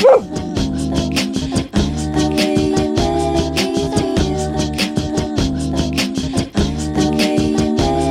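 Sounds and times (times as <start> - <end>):
small dogs yapping: 0.0 - 0.3
layered musical loop of human beatbox on a loopbox: 0.0 - 8.0.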